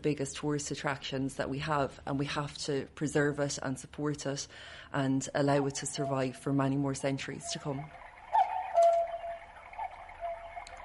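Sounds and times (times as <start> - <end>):
speech: 0.0 - 8.0
sustained whistle-like cuckoo clock chime tone: 5.6 - 10.8
cuckoo clock ticking: 8.3 - 10.8.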